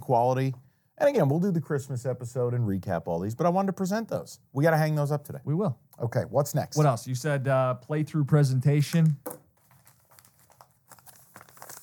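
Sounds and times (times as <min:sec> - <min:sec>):
speech: 0:00.1 - 0:09.4
paper envelope crinkling and rustling: 0:09.6 - 0:11.8.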